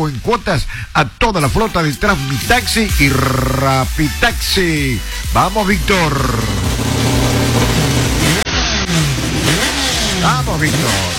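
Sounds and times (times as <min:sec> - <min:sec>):
speech: 0:00.0 - 0:06.6, 0:10.3 - 0:11.1
loud car engine revving and accelerating: 0:02.9 - 0:11.1.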